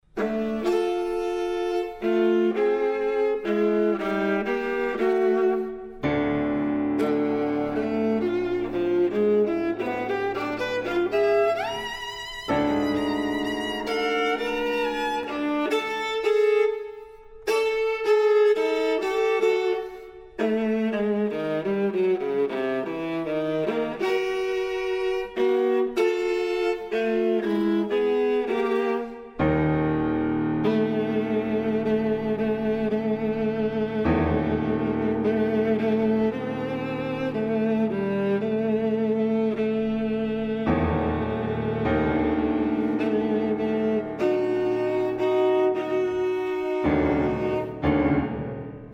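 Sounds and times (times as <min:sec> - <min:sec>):
piano: 0:00.0 - 0:48.9
viola: 0:00.0 - 0:48.9.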